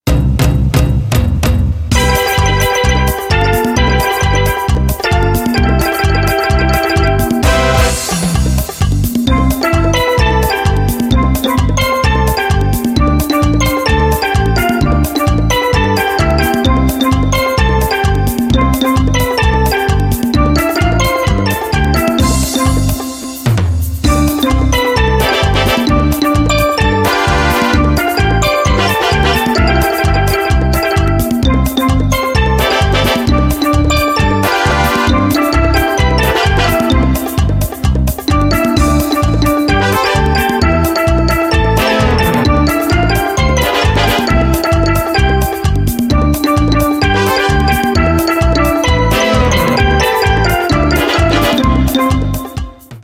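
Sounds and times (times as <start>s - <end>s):
merengue music: 0.0s - 53.0s.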